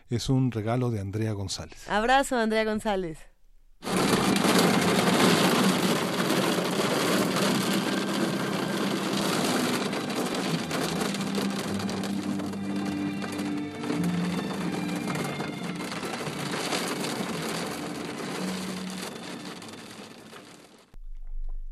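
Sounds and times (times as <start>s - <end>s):
speech: 0.1s - 4.2s
hail and heavy rain pelting hard surfaces in Mexico City: 3.8s - 21.0s.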